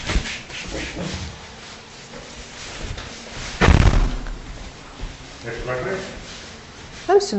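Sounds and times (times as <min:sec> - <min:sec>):
speech: 0:01.0 - 0:01.3, 0:05.4 - 0:06.2, 0:07.1 - 0:07.3
door swinging shut with a solid thud: 0:03.6 - 0:04.6.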